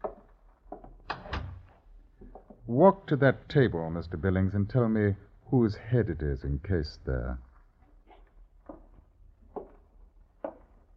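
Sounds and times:
door swinging shut with solid thuds: 0:01.1 - 0:01.7
speech: 0:02.7 - 0:07.5.

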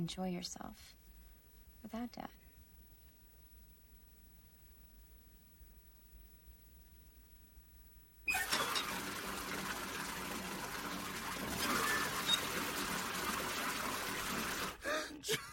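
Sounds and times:
speech: 0:00.0 - 0:01.0, 0:01.8 - 0:02.4, 0:15.2 - 0:15.5
water splashing and sloshing: 0:08.4 - 0:14.8.

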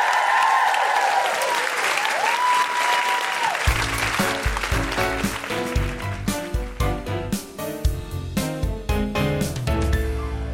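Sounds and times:
audience whooping: 0:00.0 - 0:03.8
live audience applause: 0:00.0 - 0:06.8
upbeat music with a steady beat: 0:03.7 - 0:10.5.

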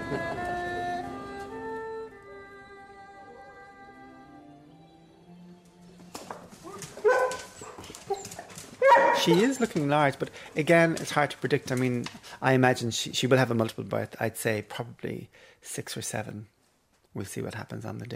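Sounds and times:
Weimaraner dogs whining and whimpering: 0:06.6 - 0:09.6
speech: 0:09.2 - 0:16.6, 0:17.2 - 0:18.1.

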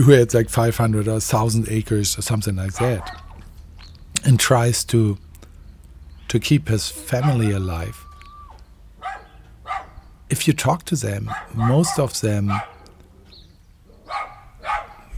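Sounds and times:
speech: 0:00.0 - 0:03.2, 0:04.2 - 0:05.2, 0:06.3 - 0:08.1, 0:10.3 - 0:12.8
person talking quietly: 0:01.4 - 0:03.2, 0:06.3 - 0:08.0, 0:10.3 - 0:12.7
Chihuahuas barking in high yips: 0:02.7 - 0:03.5, 0:06.9 - 0:10.2, 0:11.2 - 0:13.2, 0:13.9 - 0:15.1.

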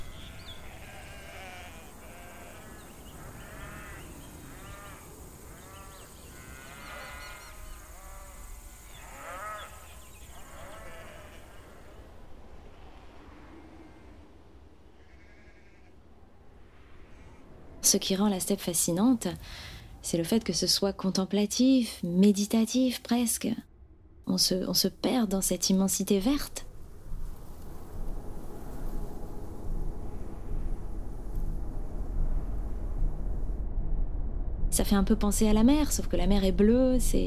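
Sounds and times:
flock of sheep and goats bleating in the steppe: 0:00.0 - 0:12.0, 0:15.0 - 0:15.9
outdoor rumble: 0:00.0 - 0:37.2
speech: 0:17.9 - 0:23.7, 0:24.3 - 0:26.6, 0:34.9 - 0:37.2.

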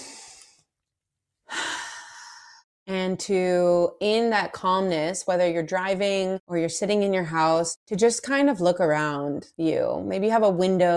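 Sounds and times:
deep breath: 0:00.0 - 0:00.6, 0:01.5 - 0:02.6
speech: 0:03.1 - 0:10.9.

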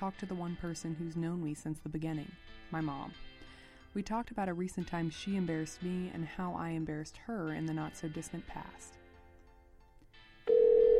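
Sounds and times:
speech: 0:00.0 - 0:09.0
telephone ringback tone on an outgoing call: 0:10.5 - 0:10.9.

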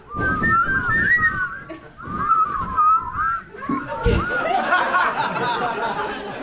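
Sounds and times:
person trying to whistle: 0:00.0 - 0:04.7
chatter: 0:00.0 - 0:06.4
laughter: 0:01.6 - 0:02.0, 0:03.6 - 0:06.4.

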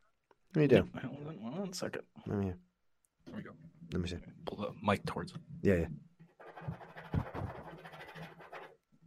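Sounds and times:
speech: 0:00.5 - 0:02.7, 0:03.3 - 0:06.8
pen scratching across a board crossing an item off a list: 0:06.4 - 0:08.8.

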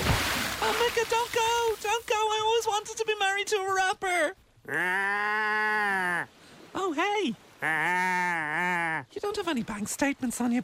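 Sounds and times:
speech: 0:00.9 - 0:10.6
goat bleating: 0:04.7 - 0:06.3, 0:07.6 - 0:09.0.

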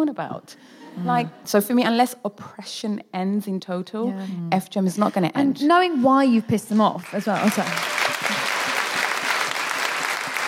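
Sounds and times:
speech: 0:00.0 - 0:08.0
audience applause: 0:07.0 - 0:10.4.

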